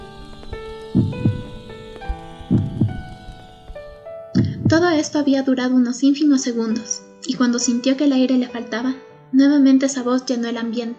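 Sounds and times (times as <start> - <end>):
sustained layered tonal drone: 0.0 - 5.6
deep heartbeat: 0.4 - 3.2, 4.4 - 5.0
speech: 4.8 - 10.9.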